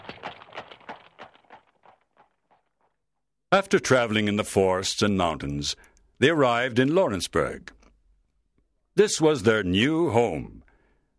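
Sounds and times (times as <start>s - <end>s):
hooves of strong horses pulling a big covered wagon: 0.0s - 3.0s
speech: 3.5s - 7.8s, 9.0s - 10.6s.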